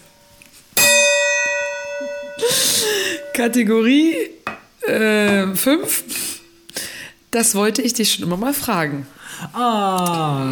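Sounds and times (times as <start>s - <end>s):
noisy metallic clash: 0.8s - 3.6s
gong struck and ringing: 0.8s - 3.7s
speech: 3.4s - 4.3s, 4.9s - 6.2s, 7.3s - 10.5s.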